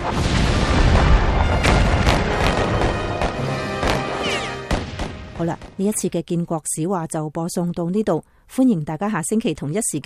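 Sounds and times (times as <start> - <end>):
heavy cannon fire from gunboats booming: 0.0 - 5.8
speech: 0.1 - 0.4, 5.4 - 10.0.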